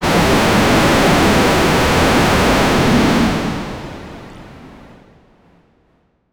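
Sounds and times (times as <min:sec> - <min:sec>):
cybernetic wind explosion: 0:00.0 - 0:04.9.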